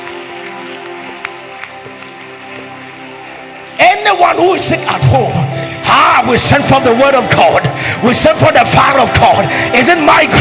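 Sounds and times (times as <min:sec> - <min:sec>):
crowd clapping at a prayer service: 0:00.0 - 0:03.8
sustained music: 0:00.0 - 0:10.3
speech: 0:04.1 - 0:10.3.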